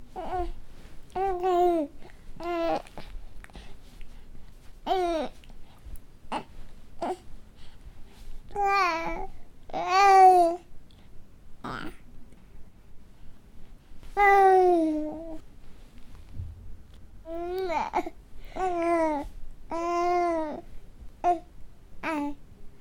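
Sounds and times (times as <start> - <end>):
two-month-old baby babbling: 1.2 - 3.0, 4.9 - 5.4, 6.3 - 7.2, 8.5 - 10.6, 11.6 - 12.0, 14.2 - 15.4, 17.3 - 20.6, 21.2 - 22.4.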